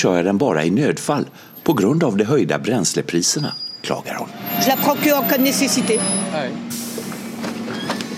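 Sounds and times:
speech: 0.0 - 6.8
bus engines droning at a busy stop: 4.1 - 8.1
bus air brake hissing: 6.7 - 8.0.

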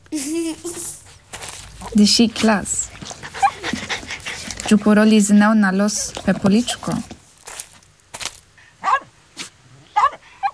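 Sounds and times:
small dog huffing: 0.7 - 5.0
speech: 2.0 - 2.8, 4.7 - 7.1
happy shaggy small dog yapping: 3.2 - 3.7, 8.8 - 10.5.

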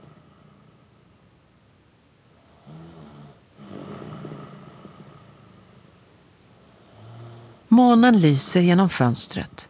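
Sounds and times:
man snoring while asleep: 0.0 - 0.9, 2.4 - 5.8, 6.8 - 7.7
steady hiss of noise: 0.0 - 9.6
speech: 7.8 - 9.6.

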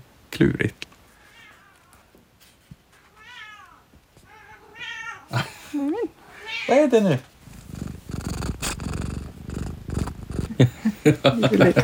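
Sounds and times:
speech: 0.4 - 0.9, 5.3 - 7.3, 10.6 - 11.8
laughter: 5.3 - 6.0, 10.5 - 11.8
cat purring: 6.1 - 11.8.

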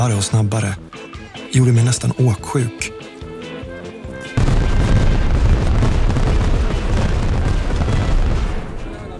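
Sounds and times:
speech: 0.0 - 3.0
fireworks booming and crackling inside a circus tent: 4.4 - 8.9.

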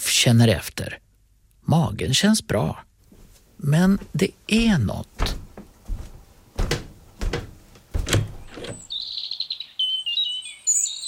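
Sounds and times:
speech: 0.2 - 1.0, 1.7 - 2.9, 3.6 - 5.4
dull clattering thumps: 3.1 - 8.9
birds chirping and twittering: 6.6 - 11.0.

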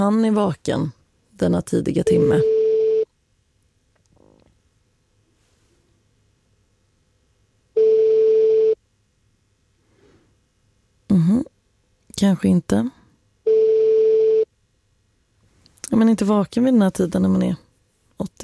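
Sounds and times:
speech: 0.0 - 2.5, 12.2 - 13.0, 15.9 - 17.6, 18.2 - 18.4
telephone ringback tone on an unanswered call: 2.0 - 3.1, 7.8 - 8.8, 13.5 - 14.5.

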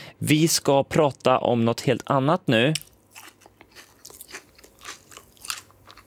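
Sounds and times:
speech: 0.2 - 2.9
crunchy chewing sound effect with bites and squelches: 2.8 - 6.0.

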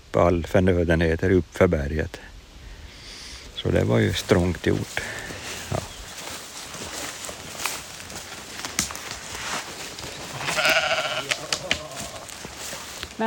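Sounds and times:
speech: 0.1 - 2.3, 3.6 - 5.3
sheep bleating: 10.2 - 12.4.

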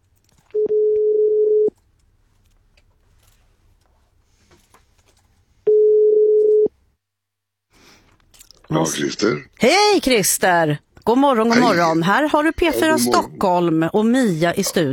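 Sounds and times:
telephone ringback tone as a radio studio calls a listener: 0.6 - 1.7, 5.7 - 6.7
speech: 8.7 - 14.9.

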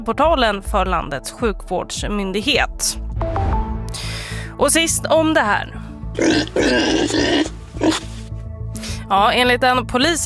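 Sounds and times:
speech: 0.0 - 3.0, 3.9 - 8.1, 9.1 - 10.2
pigs grunting: 6.2 - 8.2.

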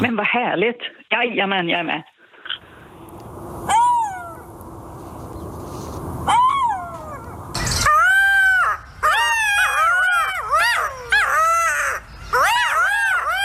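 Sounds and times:
speech: 0.0 - 2.1
golden jackal wailing: 6.3 - 13.4.

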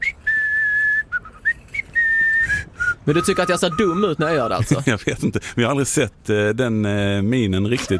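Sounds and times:
person whistling with the upper lip: 0.0 - 4.1
speech: 3.1 - 7.9.

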